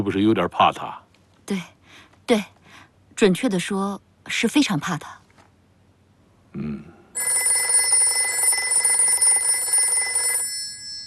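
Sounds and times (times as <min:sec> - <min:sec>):
speech: 0:00.0 - 0:02.6, 0:03.2 - 0:05.2, 0:06.6 - 0:07.5
old-style telephone bell ringing: 0:07.2 - 0:11.0.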